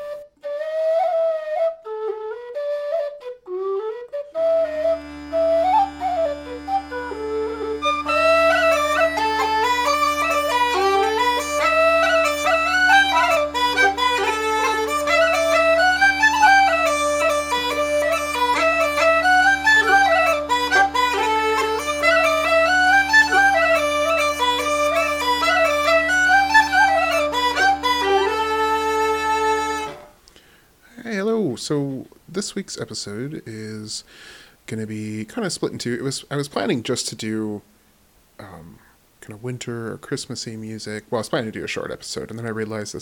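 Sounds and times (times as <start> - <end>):
lively bagpipe tune with drone: 0.0 - 30.2
speech: 32.5 - 37.7, 39.3 - 43.0.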